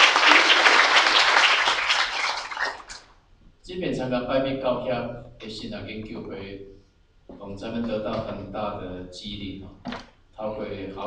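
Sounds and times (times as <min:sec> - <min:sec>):
room full of people applauding: 0:00.0 - 0:03.1
speech: 0:03.8 - 0:11.0.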